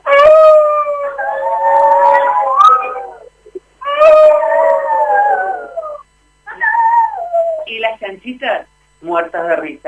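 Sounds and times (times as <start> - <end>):
wolves howling: 0.0 - 7.7
speech: 8.2 - 9.8.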